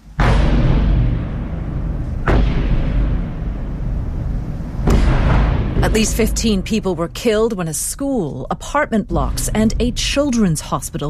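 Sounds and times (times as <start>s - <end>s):
artillery explosions from bombardment overnight in Kyiv: 0.0s - 7.3s
continuous low rumble after artillery blasts: 0.0s - 10.6s
speech: 6.0s - 11.0s.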